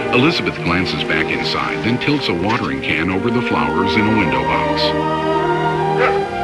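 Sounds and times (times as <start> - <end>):
speech: 0.2 - 5.4
bulldog puppies whimpering and yapping: 6.0 - 6.3.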